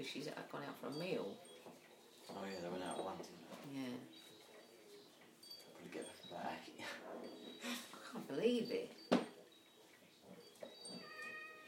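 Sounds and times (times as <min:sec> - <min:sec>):
speech: 0:00.0 - 0:01.5, 0:02.3 - 0:04.3, 0:05.8 - 0:09.0
hungry cat meowing: 0:10.9 - 0:11.6.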